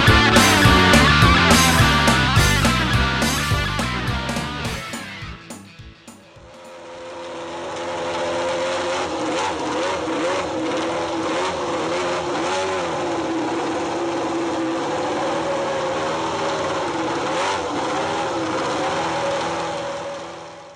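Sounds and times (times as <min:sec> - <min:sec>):
racing motorcycle engines roaring at the Motorland circuit in Alcañiz: 0:00.0 - 0:20.7.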